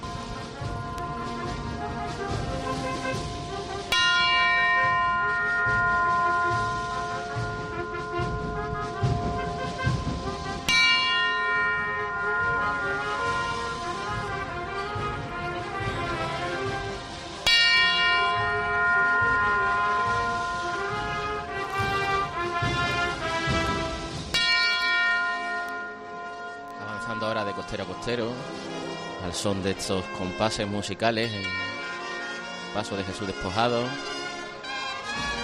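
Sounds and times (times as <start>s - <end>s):
bells ringing: 0.0s - 35.4s
speech: 28.1s - 28.5s, 29.3s - 31.7s, 32.8s - 34.2s.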